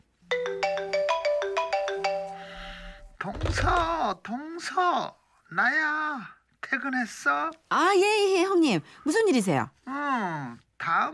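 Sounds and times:
bright electronic phone ringtone for an incoming call: 0:00.3 - 0:03.0
speech: 0:03.2 - 0:11.1.

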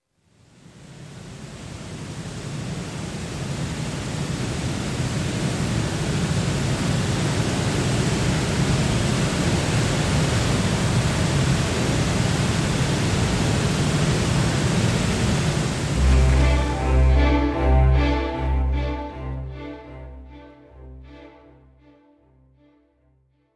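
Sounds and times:
roar of Iguazu Falls large waterfall: 0:02.2 - 0:18.1
plucked music: 0:16.0 - 0:22.7.

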